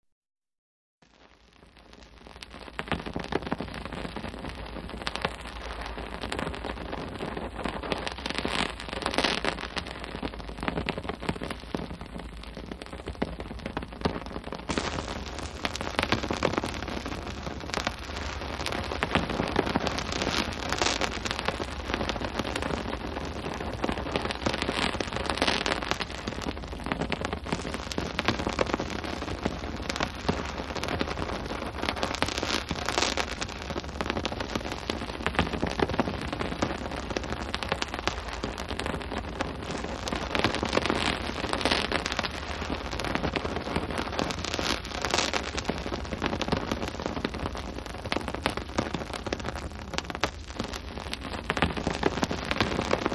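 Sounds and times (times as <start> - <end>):
hand held torch fire burning: 1.0 - 53.1.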